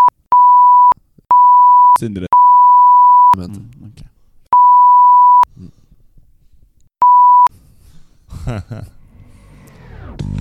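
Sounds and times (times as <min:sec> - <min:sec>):
censor bleep covering a spoken name: 0:00.0 - 0:03.4, 0:04.6 - 0:05.5, 0:07.0 - 0:07.5
speech: 0:02.0 - 0:02.3, 0:03.4 - 0:04.1, 0:05.6 - 0:05.8, 0:08.4 - 0:09.0
laughter: 0:08.3 - 0:09.0.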